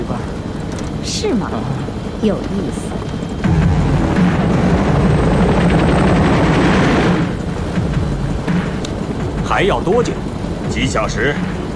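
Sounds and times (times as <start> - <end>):
helicopter rotor blades chopping: 0.0 - 11.7
speech: 1.2 - 3.1, 9.6 - 11.6.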